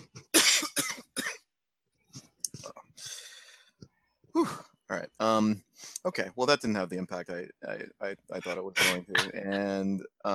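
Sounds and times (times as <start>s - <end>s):
person coughing: 0.4s - 1.4s, 8.4s - 9.6s
breathy exhale: 3.0s - 3.7s
speech: 4.4s - 10.3s
throat sounds: 8.3s - 9.8s.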